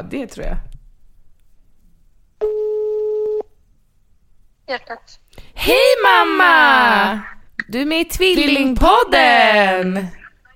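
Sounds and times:
speech: 0:00.0 - 0:00.7, 0:04.7 - 0:10.5
telephone ringback tone while calling someone at work: 0:02.4 - 0:03.5.

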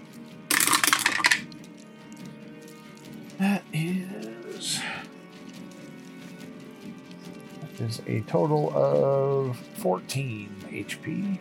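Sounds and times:
dice tumbling onto a hard surface: 0:00.5 - 0:01.5
speech: 0:03.4 - 0:04.7, 0:07.8 - 0:11.4.

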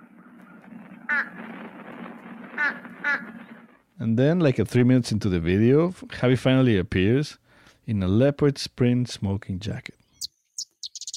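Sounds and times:
fish crow calling: 0:00.0 - 0:01.4, 0:02.6 - 0:03.7
speech: 0:01.2 - 0:01.6, 0:02.6 - 0:03.4, 0:04.0 - 0:10.0.

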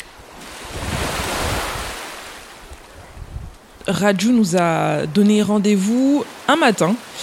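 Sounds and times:
wind buffeting the microphone: 0:00.0 - 0:05.1
surf waves breaking at a surf beach: 0:00.0 - 0:07.2
speech: 0:03.9 - 0:07.2.

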